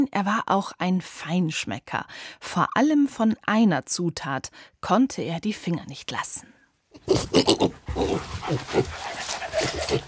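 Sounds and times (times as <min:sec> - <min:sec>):
speech: 0:00.0 - 0:10.0
dog or pig sniffing out truffles: 0:07.1 - 0:10.0.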